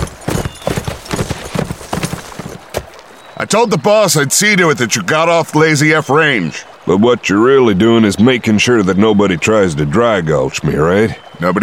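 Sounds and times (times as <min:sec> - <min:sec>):
horse hooves clip-clopping: 0:00.0 - 0:03.2
speech: 0:03.4 - 0:11.6.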